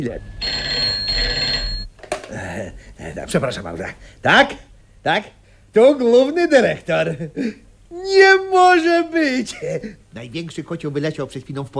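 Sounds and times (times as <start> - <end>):
speech: 0.0 - 0.7, 2.3 - 11.7
telephone ringing with electronic trills: 0.0 - 1.9.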